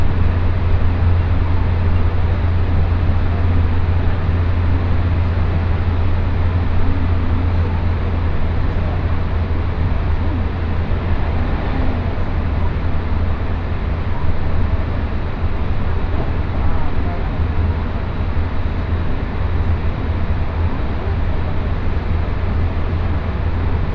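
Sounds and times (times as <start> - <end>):
deep constant rumble of a rapid commuter train heard from inside: 0.0 - 23.9
rushing wheel and track noise of a rapid commuter train: 0.0 - 23.9.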